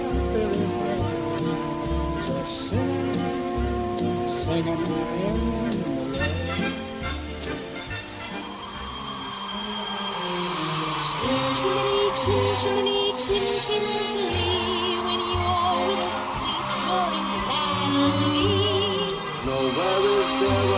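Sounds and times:
man singing in a film dance sequence: 0.0 - 7.0, 9.5 - 14.6, 18.0 - 20.7
lush orchestral music: 0.0 - 20.7
steady rain pattering and hissing: 0.0 - 20.7.

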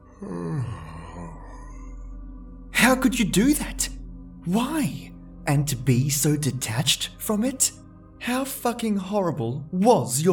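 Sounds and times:
person yawning: 0.2 - 1.8
speech: 2.9 - 10.3.

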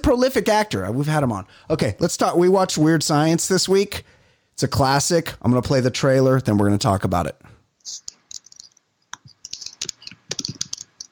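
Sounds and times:
speech: 0.1 - 8.1
typing on a computer keyboard: 8.1 - 11.1.

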